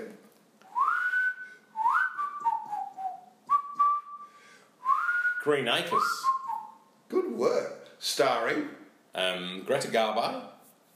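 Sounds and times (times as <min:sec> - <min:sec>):
person whistling a TV theme tune: 0:00.7 - 0:06.8
speech: 0:05.4 - 0:06.4, 0:07.1 - 0:10.5.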